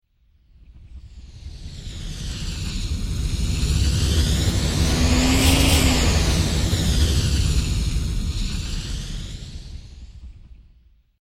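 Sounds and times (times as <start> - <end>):
large slow sci-fi space vehicle whoosh: 2.8 - 9.1.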